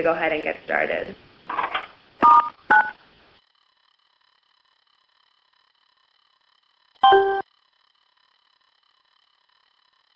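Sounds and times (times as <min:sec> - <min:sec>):
speech: 0:00.0 - 0:01.6
telephone keypad tones muting a conference call line: 0:07.0 - 0:07.4.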